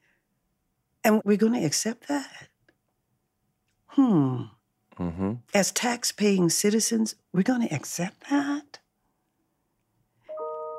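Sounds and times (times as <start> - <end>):
speech: 1.0 - 2.5, 4.0 - 8.8
bell ringing: 10.3 - 10.7.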